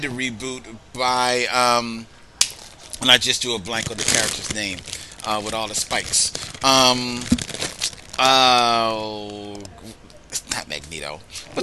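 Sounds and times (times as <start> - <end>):
speech: 0.0 - 2.2, 3.0 - 11.6
comic book page flipped: 3.7 - 8.3.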